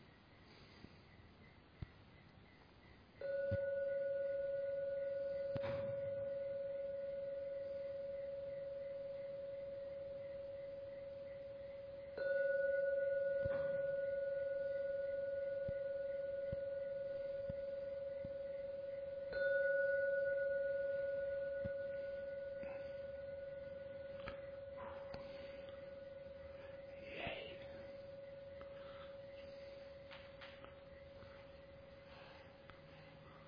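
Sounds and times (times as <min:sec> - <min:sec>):
gong struck and ringing: 0:03.2 - 0:10.2, 0:12.2 - 0:31.0.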